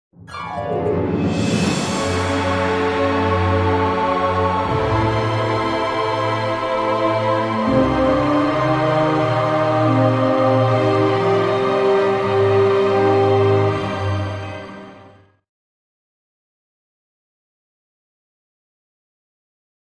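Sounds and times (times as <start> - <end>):
dramatic orchestral music: 0.2 - 15.4.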